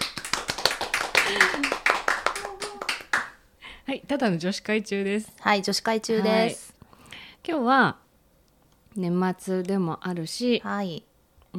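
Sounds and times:
small studio audience applauding at a live recording session: 0:00.0 - 0:03.4
speech: 0:01.3 - 0:01.8, 0:03.9 - 0:06.7, 0:07.4 - 0:08.0, 0:09.0 - 0:11.5.

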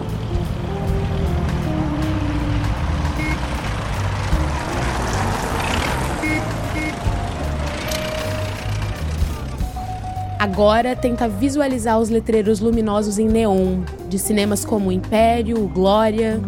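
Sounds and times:
old cars passing by on a street: 0:00.0 - 0:12.0
beeps in street traffic: 0:03.2 - 0:03.5, 0:06.2 - 0:07.2
speech: 0:10.5 - 0:16.4.

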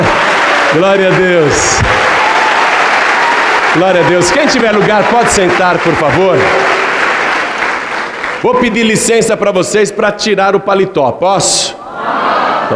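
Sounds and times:
large crowd applause: 0:00.0 - 0:09.2
man speaking through amplification: 0:00.7 - 0:02.0, 0:03.7 - 0:06.8, 0:08.4 - 0:11.8
speech: 0:00.7 - 0:02.0, 0:03.8 - 0:06.8, 0:08.4 - 0:11.8
laughter: 0:11.8 - 0:12.7.

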